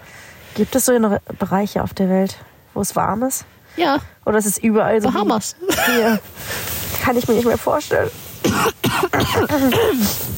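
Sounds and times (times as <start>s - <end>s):
speech: 0.6s - 10.3s
person coughing harshly: 5.6s - 6.2s, 8.4s - 10.2s.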